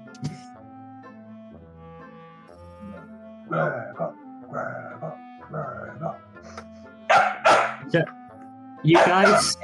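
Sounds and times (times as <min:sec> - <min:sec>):
speech: 0:00.2 - 0:00.4, 0:03.5 - 0:04.2, 0:07.9 - 0:08.2, 0:08.8 - 0:09.6
female dog barking: 0:07.1 - 0:07.9, 0:08.9 - 0:09.6.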